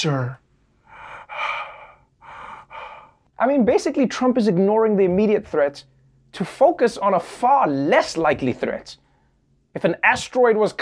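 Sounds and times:
speech: 0:00.0 - 0:00.4, 0:03.4 - 0:09.0, 0:09.8 - 0:10.8
voice imitating a waiter's exaggerated heavy breathing: 0:00.8 - 0:03.2.

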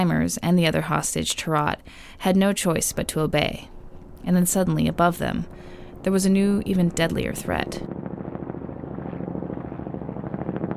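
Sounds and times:
speech: 0:00.0 - 0:08.0
Kyrgyz military helicopter rotors thumping overhead in a Himalayan valley: 0:01.6 - 0:10.7
heavy military helicopter engine roar: 0:02.8 - 0:10.7.

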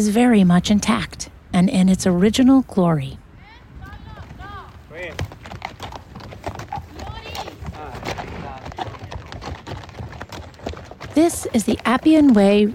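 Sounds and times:
speech: 0:00.0 - 0:03.2, 0:11.2 - 0:12.7
horses' hooves clomping on basalt stones: 0:03.8 - 0:12.7.

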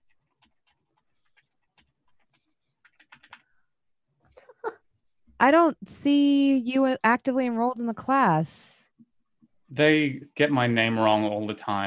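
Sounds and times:
typing on a computer keyboard: 0:00.0 - 0:03.5
speech: 0:05.4 - 0:08.8, 0:09.8 - 0:11.8.

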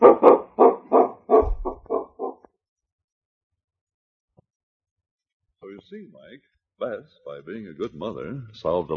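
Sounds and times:
dog barking: 0:00.0 - 0:02.4
speech: 0:05.9 - 0:08.9.

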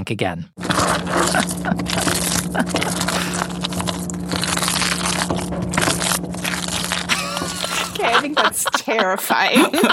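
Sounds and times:
speech: 0:00.0 - 0:04.0, 0:08.0 - 0:09.9
cheese sauce for mac and cheese cooking in a home kitchen: 0:00.6 - 0:08.1
laughter: 0:07.1 - 0:09.9.

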